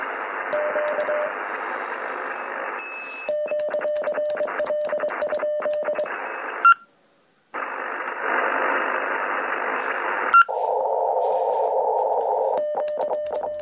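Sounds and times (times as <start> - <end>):
constant hiss of radio static: 0.0 - 3.3, 4.5 - 6.8, 7.5 - 12.6
Morse code beeps of short and long steady tones: 0.5 - 1.3, 2.8 - 6.8, 12.5 - 13.6.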